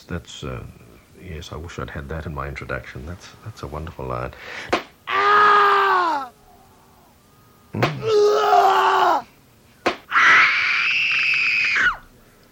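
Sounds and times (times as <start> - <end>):
speech: 0.0 - 4.8
person screaming: 5.1 - 6.6, 8.0 - 9.3, 10.1 - 12.0.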